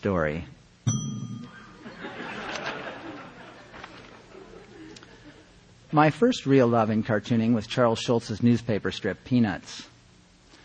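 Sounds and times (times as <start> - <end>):
speech: 0.0 - 1.0, 5.9 - 9.9
bright bell ding marking a section break: 0.9 - 1.8
audience murmuring and chuckling softly: 1.6 - 5.7.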